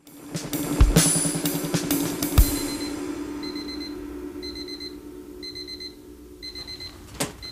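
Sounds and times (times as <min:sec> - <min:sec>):
song: 0:00.2 - 0:07.5
electronic alarm clock beeping in high piercing bursts: 0:02.6 - 0:07.5.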